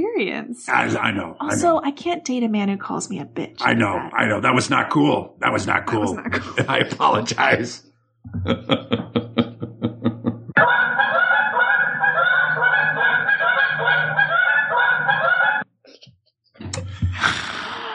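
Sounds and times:
speech: 0:00.2 - 0:09.6
laughter: 0:00.7 - 0:01.8, 0:03.6 - 0:10.6
flock of geese flying south honking: 0:10.6 - 0:15.6.

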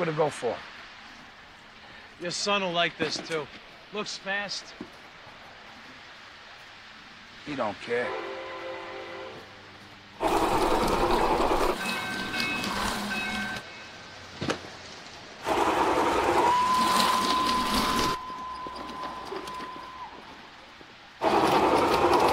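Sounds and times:
speech: 0:00.0 - 0:00.7, 0:02.2 - 0:05.0, 0:07.4 - 0:08.3
clattering train noise: 0:09.2 - 0:22.3
small toy train whirring and rattling along its track: 0:10.2 - 0:13.6, 0:15.4 - 0:20.3, 0:21.2 - 0:22.3.

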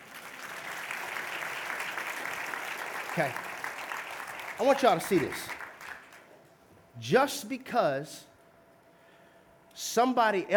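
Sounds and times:
audience applauding volunteers: 0:00.0 - 0:06.3
speech: 0:03.2 - 0:03.5, 0:04.6 - 0:05.6, 0:07.0 - 0:08.3, 0:09.8 - 0:10.5.

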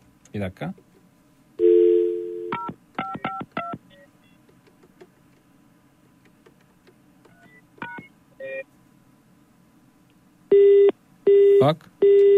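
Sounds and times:
speech: 0:00.3 - 0:00.9, 0:11.6 - 0:11.9
phone line hum with a steady tone: 0:01.6 - 0:02.6
loud repeated phone tones: 0:01.6 - 0:04.4, 0:10.5 - 0:12.3.

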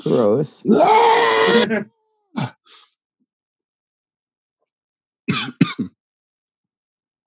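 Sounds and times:
speech: 0:00.0 - 0:02.6
voice imitating guttural screaming: 0:00.7 - 0:01.9.

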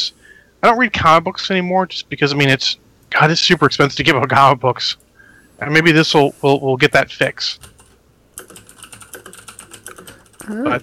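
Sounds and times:
speech: 0:00.0 - 0:05.0, 0:05.6 - 0:07.7, 0:10.5 - 0:10.8
typing on a computer keyboard: 0:07.6 - 0:10.8.

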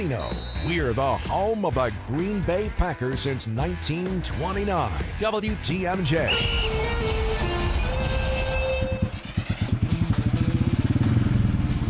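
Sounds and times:
speech: 0:00.0 - 0:07.1
motorcycle engine revving: 0:07.7 - 0:11.8.

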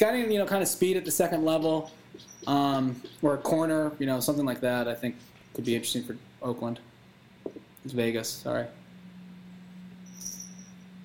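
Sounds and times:
speech: 0:00.0 - 0:08.8
steady low electrical hum: 0:00.0 - 0:11.0
small bell on a cat jingling: 0:10.1 - 0:10.8.

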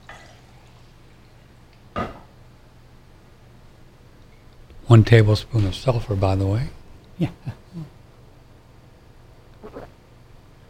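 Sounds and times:
water poured for a drink: 0:00.0 - 0:01.5
low steady hum: 0:00.0 - 0:10.6
speech: 0:04.9 - 0:07.9.

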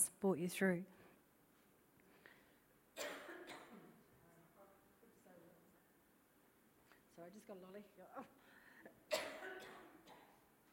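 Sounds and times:
speech: 0:00.2 - 0:01.0, 0:07.2 - 0:09.0
dry cough: 0:03.0 - 0:03.9, 0:09.1 - 0:10.4.

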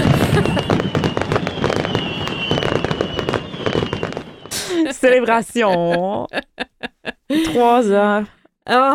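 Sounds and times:
laughter: 0:00.0 - 0:00.9, 0:04.6 - 0:07.8
fireworks crackling and popping: 0:00.0 - 0:05.9
thin whistling tone: 0:00.7 - 0:04.7
speech: 0:05.0 - 0:06.7, 0:07.3 - 0:08.9.

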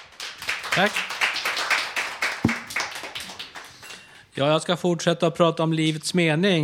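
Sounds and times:
small audience clapping: 0:00.0 - 0:03.8
speech: 0:00.8 - 0:01.2, 0:04.4 - 0:06.6.

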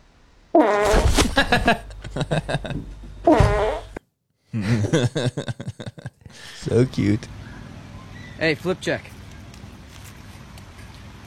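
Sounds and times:
squeaky rippling fart sounds: 0:00.6 - 0:01.3, 0:03.2 - 0:04.0
speech: 0:00.6 - 0:03.5, 0:04.9 - 0:07.4, 0:08.4 - 0:09.1
laughter: 0:01.2 - 0:02.9, 0:04.6 - 0:06.8.

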